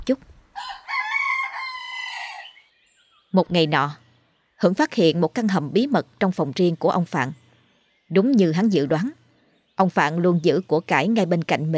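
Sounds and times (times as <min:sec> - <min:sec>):
speech: 0:00.0 - 0:00.7, 0:03.3 - 0:04.0, 0:04.6 - 0:07.4, 0:08.1 - 0:09.2, 0:09.8 - 0:11.7
rooster crowing: 0:00.6 - 0:02.7.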